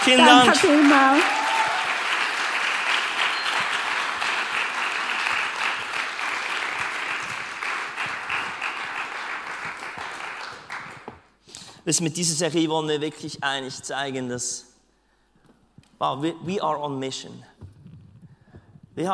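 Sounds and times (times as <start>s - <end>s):
speech: 0.0s - 1.4s, 11.9s - 14.7s, 16.0s - 17.6s, 19.0s - 19.1s
dense audience applause: 0.0s - 11.3s.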